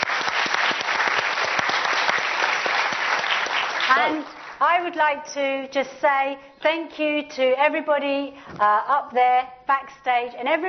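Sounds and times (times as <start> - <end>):
roomful of people clapping: 0.0 - 4.6
speech: 3.9 - 10.6.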